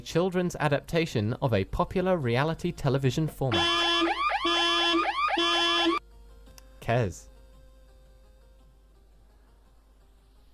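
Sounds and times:
speech: 0.0 - 3.9, 6.9 - 7.3
quiz buzzer with rising warbling electronic whoops: 3.5 - 6.0.

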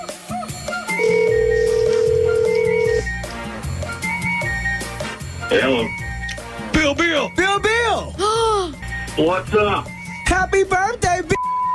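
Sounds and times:
music: 0.0 - 11.7
ringback tone of an outgoing phone call: 1.0 - 3.0
speech: 5.5 - 6.0, 9.2 - 11.4.

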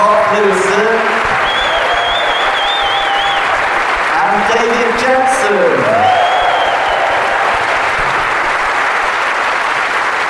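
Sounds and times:
audience applause for guests at a live event: 0.0 - 10.2
thin sustained whistle-like tone: 1.3 - 3.6, 6.0 - 7.2.

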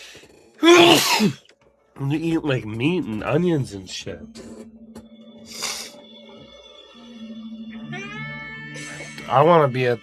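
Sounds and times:
loud sneeze: 0.6 - 1.4
speech: 0.6 - 1.4, 2.0 - 4.5, 9.3 - 10.0.

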